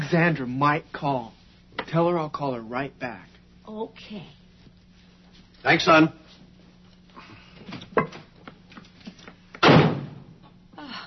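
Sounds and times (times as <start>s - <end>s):
speech: 0.1s - 4.4s, 5.6s - 6.2s
door slamming shut: 9.6s - 10.3s.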